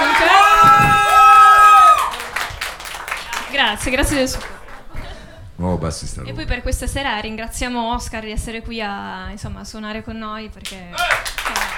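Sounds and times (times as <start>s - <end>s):
small crowd whooping: 0.0s - 4.8s
scattered clapping from a small crowd: 0.0s - 5.0s, 10.6s - 11.7s
speech: 3.7s - 4.6s, 5.6s - 11.4s.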